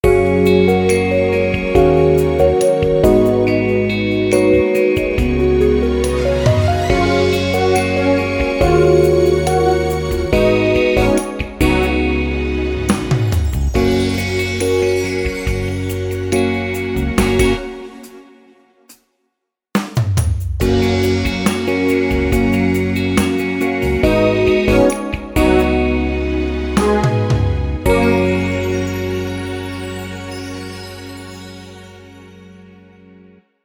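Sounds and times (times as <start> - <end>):
ballad with sixteenth-note beat: 0.0 - 18.4, 20.6 - 32.8.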